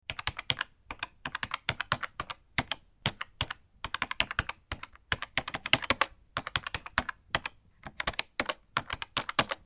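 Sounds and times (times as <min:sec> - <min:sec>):
aggressive keyboard typing: 0:00.1 - 0:09.6.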